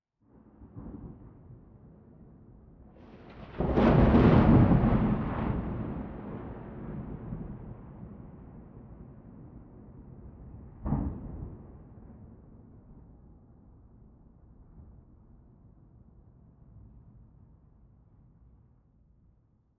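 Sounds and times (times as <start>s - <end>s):
wind: 0.2s - 19.7s
thunder: 0.4s - 15.0s.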